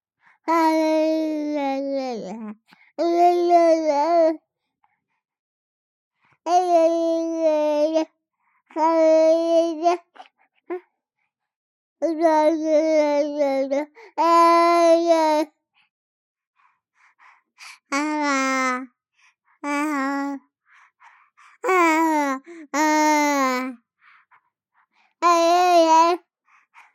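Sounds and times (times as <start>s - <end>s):
3-month-old baby boy babbling and mumbling: 0.5s - 4.4s, 6.5s - 8.1s, 8.7s - 10.2s, 12.0s - 15.5s, 17.9s - 18.9s, 19.6s - 20.4s, 21.6s - 23.8s, 25.2s - 26.2s.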